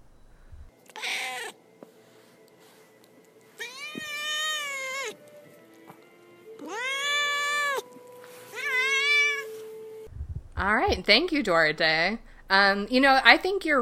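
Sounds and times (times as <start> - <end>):
faint hum: 0.0 - 13.7
male domestic cat meowing: 0.9 - 1.6, 3.6 - 5.2, 6.5 - 9.5
speech: 10.6 - 13.7.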